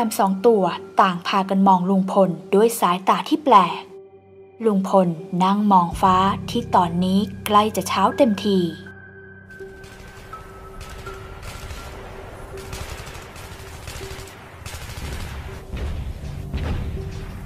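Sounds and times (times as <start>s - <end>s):
speech: 0.0s - 3.9s, 4.6s - 8.8s
dense continuous rattling bursts of gunfire in a sustained battle: 9.7s - 17.4s
heavier booming blasts of explosions in a sustained battle: 11.6s - 17.4s.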